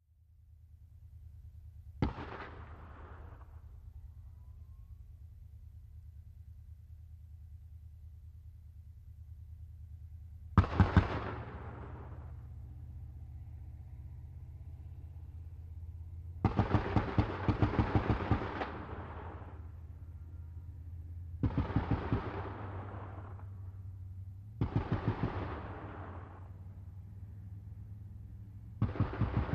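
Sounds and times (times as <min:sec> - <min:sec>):
distant .50 caliber machine gun bursts: 0:10.6 - 0:12.4, 0:16.4 - 0:19.7, 0:21.4 - 0:23.7, 0:24.6 - 0:26.6, 0:28.8 - 0:29.5.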